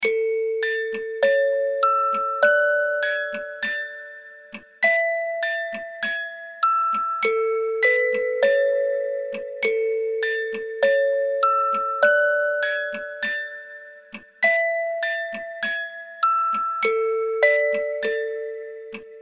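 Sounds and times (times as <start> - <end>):
toddler lullaby on a music box: 0.0 - 19.2.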